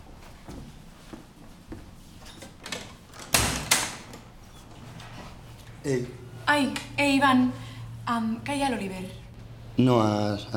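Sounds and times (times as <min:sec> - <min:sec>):
door opening with creak, scrape and bump: 0:02.2 - 0:05.1
speech: 0:05.8 - 0:09.2, 0:09.8 - 0:10.5.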